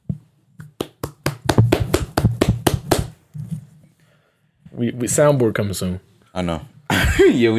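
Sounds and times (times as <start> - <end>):
single person clapping hands: 0.7 - 3.2
speech: 4.8 - 7.5.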